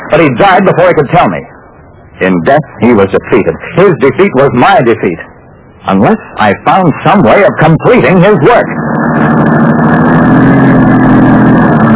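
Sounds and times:
car engine running while driving: 0:00.0 - 0:11.9
speech: 0:00.1 - 0:01.6, 0:02.2 - 0:09.3.

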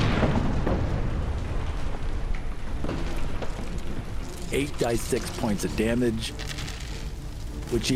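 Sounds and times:
fireball explosion: 0:00.0 - 0:04.0
speech: 0:04.6 - 0:06.6, 0:07.7 - 0:07.9.

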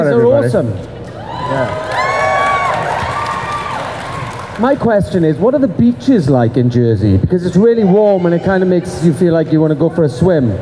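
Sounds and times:
speech: 0:00.0 - 0:02.0, 0:04.6 - 0:10.6
live audience crowd cheering and whooping in New Jersey: 0:01.1 - 0:04.6
high shouts from the crowd: 0:01.2 - 0:04.6, 0:07.7 - 0:09.0.

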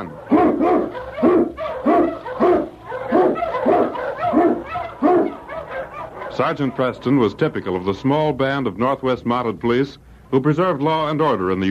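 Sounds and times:
Eskimo lead sled dog barking: 0:00.0 - 0:07.4
speech: 0:06.4 - 0:11.7.

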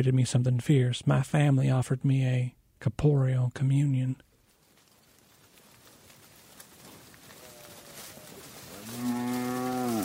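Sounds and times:
speech: 0:00.0 - 0:04.3
cattle lowing: 0:05.0 - 0:10.0
cow mooing: 0:08.7 - 0:10.0.

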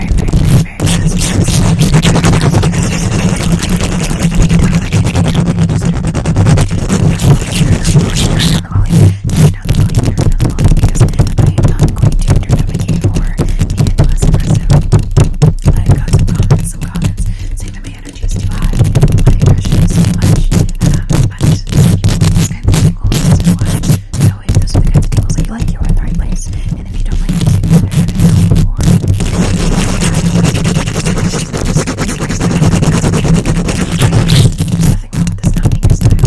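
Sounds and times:
fast aggressive scratching and tapping on a microphone: 0:00.0 - 0:36.2.

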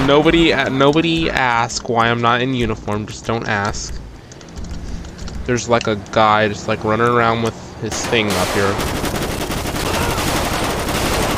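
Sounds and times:
speech: 0:00.1 - 0:04.0, 0:05.5 - 0:09.0
AK rifle fire in a video game shootout: 0:08.0 - 0:11.3.

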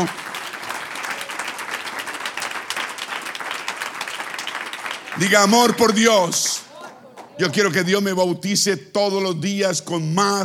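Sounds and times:
speech: 0:00.0 - 0:00.2, 0:05.2 - 0:06.6, 0:07.4 - 0:10.4
crowd applauding: 0:00.0 - 0:07.7.

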